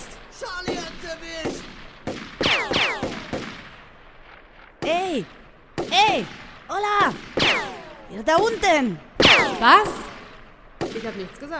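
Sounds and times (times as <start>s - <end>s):
gunshots: 0.0s - 11.5s
ricochet whine: 1.6s - 3.7s, 5.2s - 11.0s
speech: 5.2s - 5.4s, 8.2s - 10.1s, 11.0s - 11.5s.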